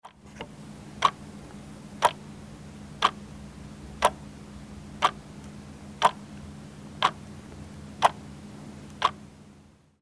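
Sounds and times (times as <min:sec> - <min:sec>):
clock: 0:02.0 - 0:02.2, 0:04.0 - 0:04.2, 0:05.0 - 0:05.2, 0:06.0 - 0:06.2, 0:07.0 - 0:07.2, 0:08.0 - 0:08.2, 0:08.9 - 0:09.2.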